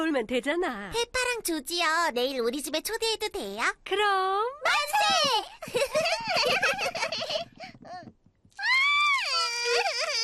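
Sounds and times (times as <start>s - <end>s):
speech: 0.2s - 8.1s
laughter: 5.6s - 7.7s
young child wailing: 8.6s - 10.2s.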